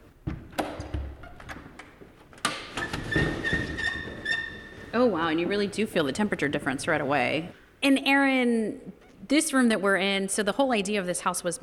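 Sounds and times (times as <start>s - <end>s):
wooden jib door panels clattering: 0.3s - 4.9s
faint creaking squeak: 2.8s - 5.1s, 8.9s - 9.3s
speech: 4.9s - 11.6s.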